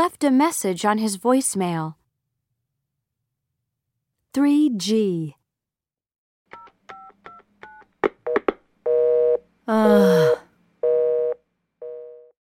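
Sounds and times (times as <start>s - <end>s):
speech: 0.0s - 2.0s, 4.4s - 5.4s, 9.7s - 10.4s
telephone keypad dialing tones: 6.5s - 9.4s.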